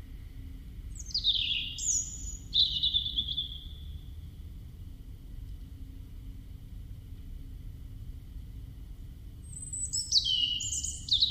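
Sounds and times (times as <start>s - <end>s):
European robin Erithacus rubecula singing: 0.9s - 4.1s, 9.4s - 11.2s.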